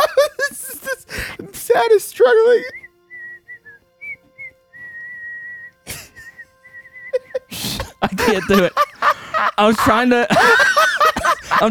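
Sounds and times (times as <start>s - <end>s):
laughter: 0.0s - 1.2s, 5.9s - 6.3s, 7.1s - 11.7s
speech: 1.8s - 2.8s, 8.0s - 8.8s, 9.4s - 10.7s
person whistling the flute part of a song: 2.7s - 7.4s.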